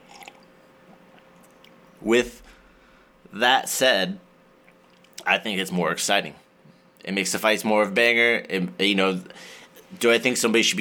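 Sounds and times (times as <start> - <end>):
person sipping coffee: 0.0 - 1.8
speech: 2.0 - 2.5, 3.3 - 4.3, 5.2 - 6.4, 7.0 - 10.7.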